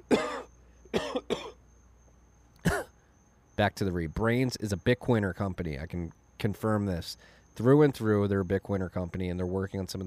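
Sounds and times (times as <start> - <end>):
person coughing forcefully: 0.0 - 1.6, 2.6 - 3.0
faint steady hum: 0.0 - 10.0
speech: 3.6 - 10.0.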